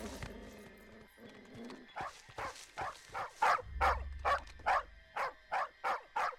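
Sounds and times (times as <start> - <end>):
cartoon dog barking: 1.9 - 6.3.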